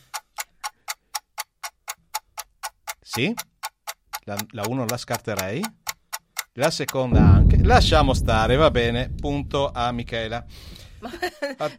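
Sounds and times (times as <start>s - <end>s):
clock ticking during a quiz game: 0.0s - 8.4s
speech: 3.1s - 3.5s, 4.3s - 5.8s, 6.6s - 11.7s.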